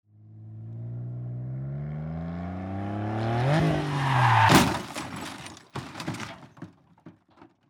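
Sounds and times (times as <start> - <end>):
car crash: 3.4 - 7.6.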